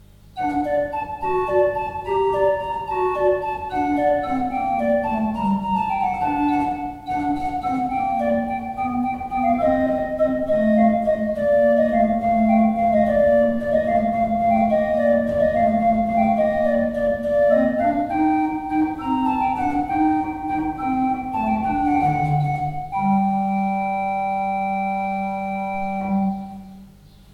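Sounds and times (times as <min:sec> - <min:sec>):
pipe organ: 0:00.0 - 0:27.3.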